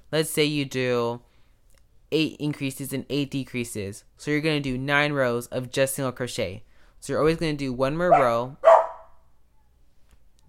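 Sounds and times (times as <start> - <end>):
speech: 0.1 - 1.3, 2.1 - 8.7
dog barking: 8.1 - 9.2.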